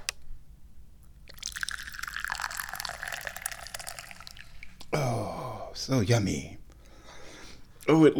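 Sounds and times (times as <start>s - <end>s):
Da Hong Pao tea pouring into a cup: 1.3s - 4.7s
speech: 5.8s - 6.6s, 7.9s - 8.1s.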